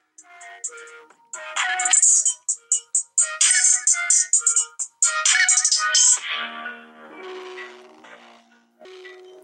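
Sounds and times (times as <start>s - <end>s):
loud distorted music through a small tinny phone speaker: 0.0s - 9.4s.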